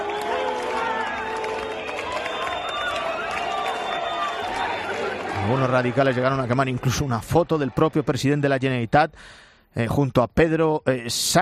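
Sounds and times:
scattered applause from a protest crowd: 0.0 - 8.5
large protest crowd shouting and booing: 0.0 - 8.8
shrill whistles in a protest crowd: 1.6 - 4.8
speech: 5.5 - 11.4.

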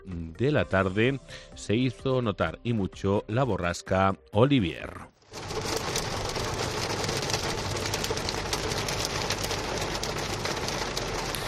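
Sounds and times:
speech: 0.0 - 5.1
hail pelting a car windshield during an afternoon storm: 5.3 - 11.4.

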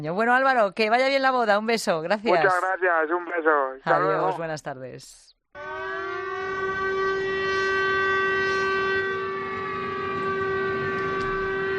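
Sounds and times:
speech: 0.0 - 5.8
air raid siren warning of bombing: 5.6 - 11.7.

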